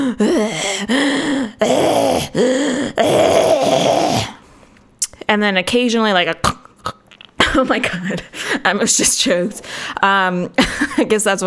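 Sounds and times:
speech: 0.0 - 1.8, 5.4 - 6.6, 7.6 - 11.4
person imitating someone breathing loudly while asleep: 0.0 - 4.5.

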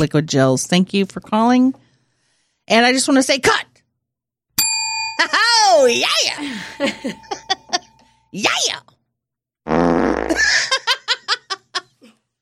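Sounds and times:
speech: 0.0 - 1.8, 2.7 - 3.7, 5.2 - 7.5, 8.3 - 8.9, 9.7 - 10.9
several people giggling and laughing: 6.4 - 8.0, 10.4 - 12.1
loud wet drawn-out fart: 9.7 - 10.6.

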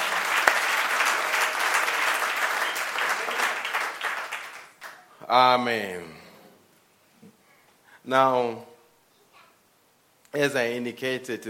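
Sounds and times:
audience applauding: 0.0 - 5.1
speech: 5.3 - 6.2, 8.1 - 8.7, 10.3 - 11.4.

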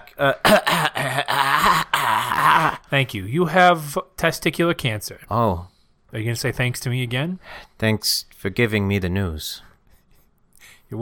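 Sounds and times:
speech: 0.1 - 1.8, 2.4 - 9.7
person coughing on a doctor's request during a testicular examination: 0.2 - 2.8.

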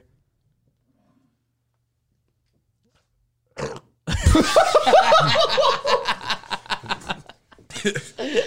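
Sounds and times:
long gurgling burp: 3.5 - 4.0
snickering laughter: 4.1 - 8.4
speech: 4.4 - 6.0, 7.8 - 8.4.

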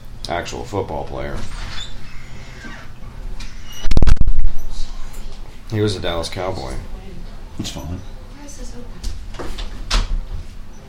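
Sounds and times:
speech: 0.3 - 1.8, 5.7 - 6.9, 7.6 - 9.6
wooden door creaking and knocking as it opens: 1.4 - 4.0.

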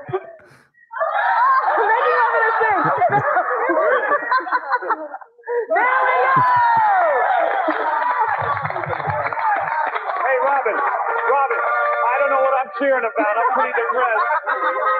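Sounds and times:
laughter: 0.0 - 14.9
game show studio audience cheering: 1.0 - 3.0, 5.7 - 14.9
speech: 3.1 - 3.4
game show studio audience clapping: 6.3 - 14.9.

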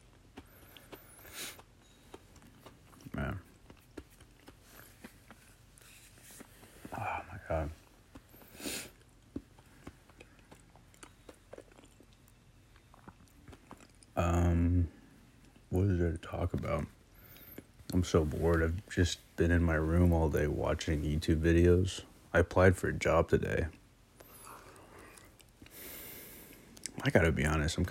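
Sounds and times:
crisp crunching while chewing food: 0.0 - 14.2, 14.8 - 18.9, 23.6 - 27.2
speech: 16.5 - 17.0, 17.9 - 23.8, 27.0 - 27.9.

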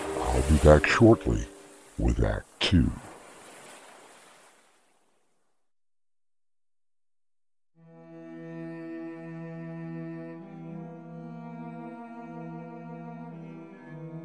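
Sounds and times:
sustained droning harmonic tonal music: 0.0 - 2.0, 7.8 - 14.2
ocean waves breaking on shore: 0.0 - 4.9
speech: 0.4 - 3.0.

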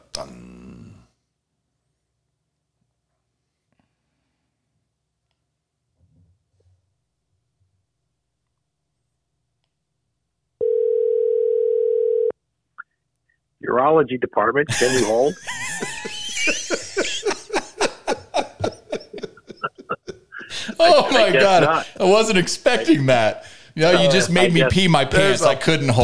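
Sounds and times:
speech: 0.2 - 0.6, 13.8 - 15.9, 20.8 - 26.0
telephone tone while a call is placed: 10.6 - 12.3
laughter: 14.7 - 26.0.

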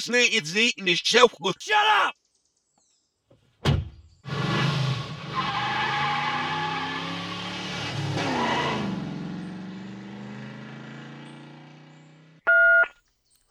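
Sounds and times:
speech: 0.0 - 2.2
car door thudding shut: 3.6 - 4.0
car engine humming as the vehicle slows to a stop: 5.2 - 12.8.

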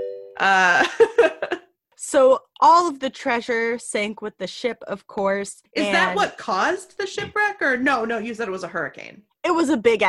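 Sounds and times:
electronic doorbell ding-dong chime: 0.0 - 0.4
speech: 0.4 - 1.4, 2.0 - 10.0.

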